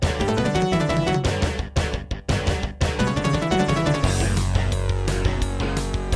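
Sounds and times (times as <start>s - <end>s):
sound card wavetable synthesizer music intro: 0.2s - 1.5s, 3.0s - 6.1s.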